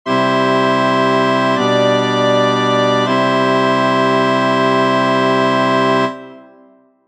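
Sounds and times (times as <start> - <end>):
first inversion chords in harmony: 0.1 - 6.8.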